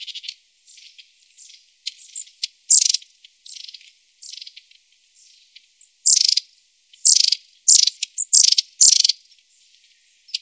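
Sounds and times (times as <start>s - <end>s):
long-tailed tit calls: 0.0s - 4.6s, 6.0s - 9.2s.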